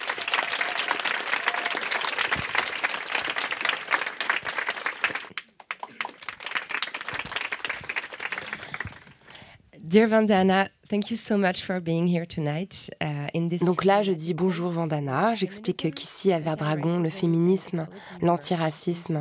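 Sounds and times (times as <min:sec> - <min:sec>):
audience applauding: 0:00.0 - 0:09.3
speech: 0:09.9 - 0:19.1.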